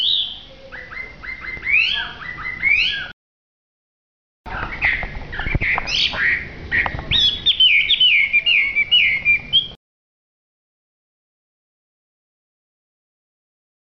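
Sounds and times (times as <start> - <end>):
hwamei singing rising whistled slurs: 0.0 - 3.1, 4.7 - 9.8.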